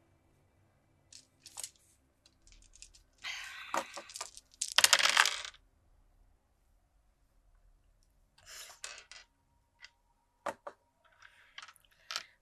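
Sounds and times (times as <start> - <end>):
dice clattering across a surface during a tabletop role-playing game roll: 1.1 - 5.6, 8.4 - 9.3, 9.8 - 12.3.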